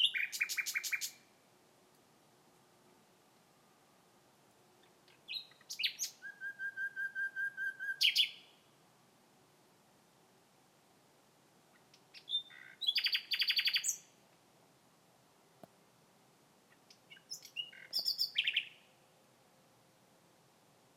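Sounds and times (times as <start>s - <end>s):
common nightingale singing: 0.0s - 1.3s, 4.8s - 8.7s, 11.7s - 14.2s, 16.7s - 19.0s.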